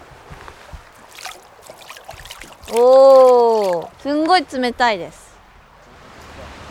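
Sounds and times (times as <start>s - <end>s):
flowing river water rushing and splashing: 1.0s - 4.2s
speech: 2.7s - 5.2s.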